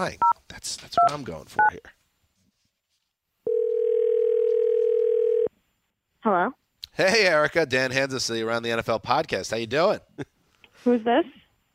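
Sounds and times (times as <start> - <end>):
speech: 0.0 - 2.0, 6.2 - 11.7
phone call ringing tone on a phone line: 3.5 - 5.5.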